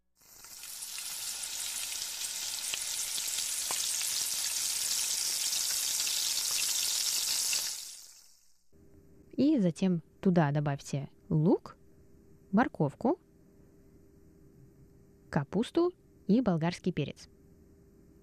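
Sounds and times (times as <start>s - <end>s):
mushrooms frying in hot oil in a wok: 0.2s - 8.5s
speech: 9.4s - 11.8s, 12.5s - 13.2s, 15.3s - 17.3s.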